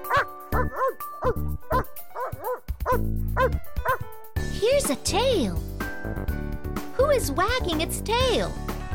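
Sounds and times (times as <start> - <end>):
dog barking and yipping with whiny howls: 0.0 - 4.1
speech: 1.3 - 1.9, 4.9 - 6.2, 7.1 - 8.8.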